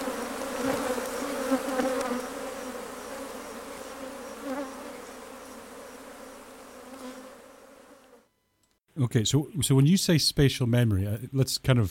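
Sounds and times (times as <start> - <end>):
many bees buzzing together: 0.0 - 8.3
speech: 9.0 - 11.8.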